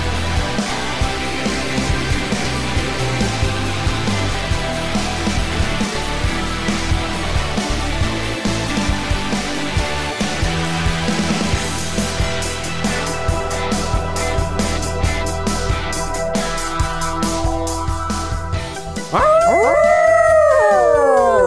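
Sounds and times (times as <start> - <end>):
steady music: 0.0 - 21.4
dog howling: 19.1 - 21.4.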